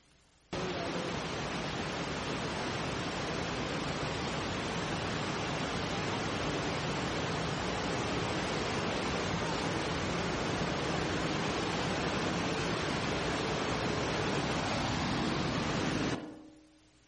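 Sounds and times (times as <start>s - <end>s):
large waterfall roaring: 0.6s - 16.2s.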